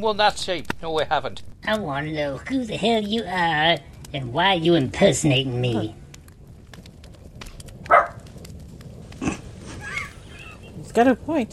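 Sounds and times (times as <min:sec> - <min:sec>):
speech: 0:00.0 - 0:06.0, 0:11.0 - 0:11.5
low steady rumble: 0:00.0 - 0:11.5
dog barking: 0:07.9 - 0:08.2.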